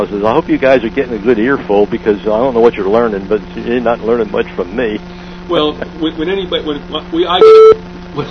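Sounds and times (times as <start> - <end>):
speech: 0.0 - 8.2
telephone beep on a line the caller suspects is tapped: 7.4 - 7.8.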